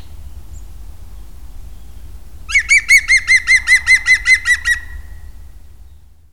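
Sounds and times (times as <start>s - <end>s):
European green woodpecker giving loud ringing notes: 2.5s - 5.2s.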